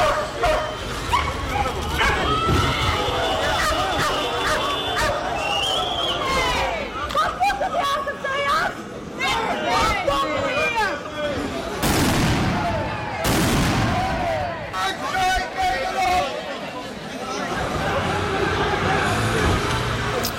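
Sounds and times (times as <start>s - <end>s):
police dogs barking and yelping at a demonstration: 0.0s - 2.4s, 3.4s - 5.3s
dense murmur of crowd voices and shouting at a demonstration: 0.0s - 20.3s
loud sharp bangs of fireworks at a street protest: 11.8s - 14.4s.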